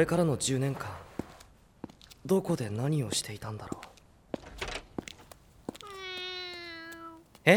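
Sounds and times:
speech: 0:00.0 - 0:01.0, 0:02.2 - 0:03.9
rustling: 0:04.6 - 0:07.5
cat meowing inside a person's room: 0:05.8 - 0:07.3.

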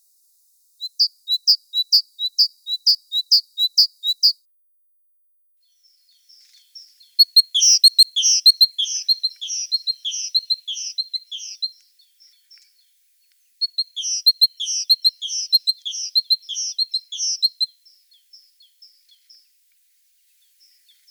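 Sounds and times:
great tit singing two-note phrases: 0:00.8 - 0:04.4, 0:05.8 - 0:12.9, 0:13.6 - 0:19.5.

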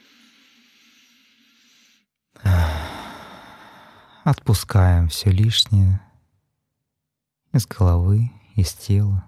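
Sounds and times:
deep breath out during a guided relaxation exercise: 0:00.0 - 0:04.3
speech: 0:04.3 - 0:06.1, 0:07.6 - 0:09.2.

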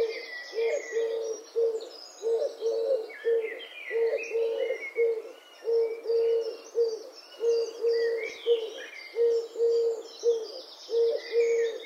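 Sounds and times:
Eurasian collared dove repeating its hollow three-syllable coo: 0:00.0 - 0:11.8
other birds chirping and twittering: 0:00.0 - 0:11.8.

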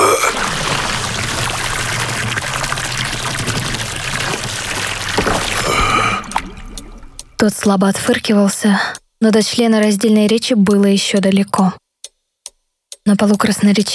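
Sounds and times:
water gushing and spluttering from a tap: 0:00.0 - 0:07.6
speech: 0:07.4 - 0:11.8, 0:13.0 - 0:13.9.

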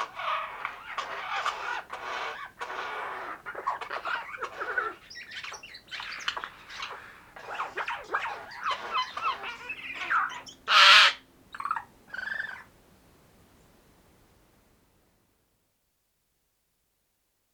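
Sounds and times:
Eurasian jay Garrulus glandarius chattering and squawking: 0:00.0 - 0:12.6.

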